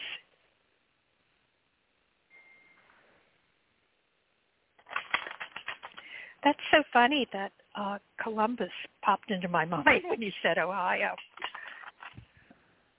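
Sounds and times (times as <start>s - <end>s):
deck of tarot cards being shuffled: 4.8s - 6.0s, 11.1s - 12.2s
speech: 6.5s - 11.3s.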